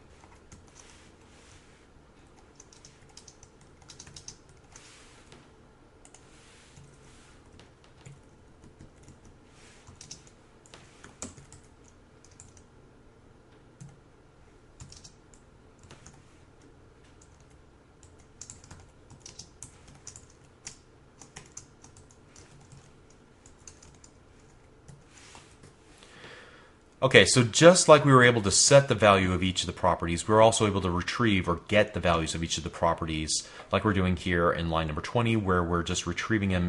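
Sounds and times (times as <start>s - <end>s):
computer keyboard typing programming code: 2.3s - 4.9s, 6.0s - 12.7s, 13.8s - 14.0s, 14.8s - 16.3s, 17.1s - 25.7s
speech: 27.0s - 36.6s.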